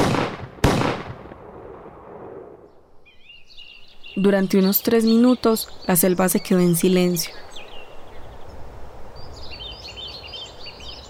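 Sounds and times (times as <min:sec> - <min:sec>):
loud gunshots with long rolling echo: 0:00.0 - 0:02.6
birds chirping: 0:00.0 - 0:11.0
speech: 0:04.2 - 0:07.5.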